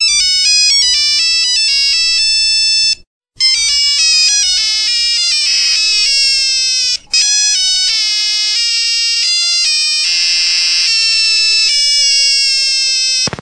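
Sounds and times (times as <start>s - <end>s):
broken mobile phone ringtone: 0.0s - 13.4s.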